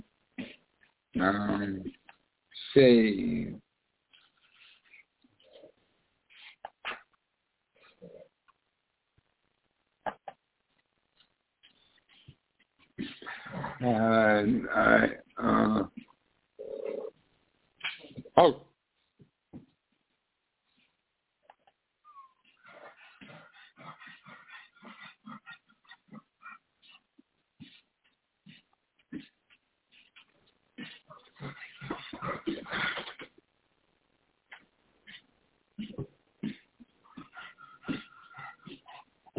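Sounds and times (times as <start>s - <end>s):
speech: 1.2s - 2.0s, 2.8s - 3.6s, 13.8s - 16.0s, 18.4s - 18.7s
dog breathing heavily while lying down: 13.0s - 13.8s, 22.4s - 33.3s, 35.0s - 39.3s.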